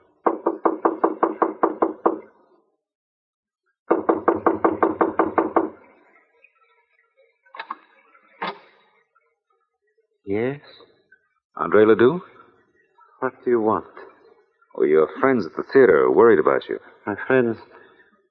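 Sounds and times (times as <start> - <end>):
rapid knocking on an apartment door: 0.2 - 2.2, 3.9 - 5.8
speech: 10.3 - 10.9, 11.6 - 12.3, 13.2 - 14.0, 14.8 - 17.8.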